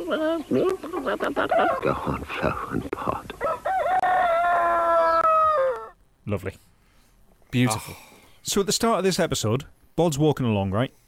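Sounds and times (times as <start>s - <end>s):
people imitating a chicken crowing-style call to lure escaped chickens: 0.0s - 6.0s
speech: 0.1s - 3.4s, 6.3s - 6.7s, 7.5s - 11.0s.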